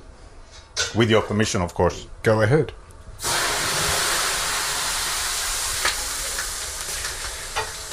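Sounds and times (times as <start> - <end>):
speech: 0.9 - 2.8
water hissing on hot sauna stones: 3.2 - 7.9.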